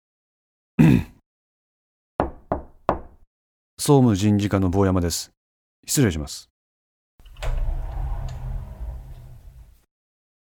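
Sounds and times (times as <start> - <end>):
speech: 3.8 - 6.5
sliding door rolling open: 7.2 - 9.9.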